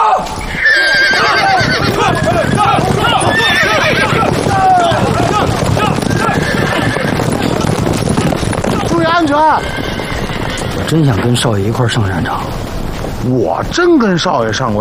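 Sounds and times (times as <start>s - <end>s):
horses neighing as riders mount and set off: 0.0s - 13.0s
horses' hooves clip-clopping: 0.0s - 14.7s
speech: 10.9s - 12.6s, 13.2s - 14.7s.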